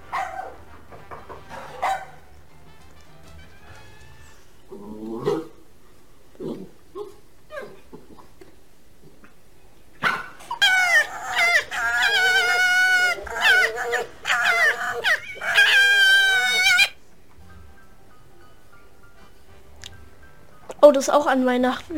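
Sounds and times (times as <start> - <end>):
dog barking: 0.0 - 0.7, 1.5 - 2.3, 10.0 - 16.9
faint hum: 0.0 - 21.9
dog yelping and whimpering: 6.6 - 8.3, 10.0 - 17.0
speech: 21.0 - 21.9.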